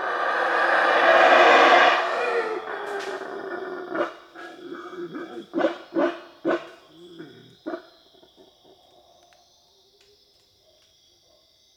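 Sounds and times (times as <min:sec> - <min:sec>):
black howler monkey giving deep hoarse barking grunts: 0:00.0 - 0:09.0.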